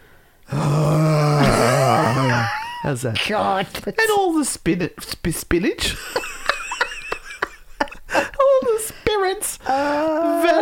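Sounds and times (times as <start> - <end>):
voice imitating a terrifying groan: 0.5 - 2.6
laughter: 1.4 - 2.9, 6.0 - 8.7
speech: 2.9 - 6.2, 9.7 - 10.0.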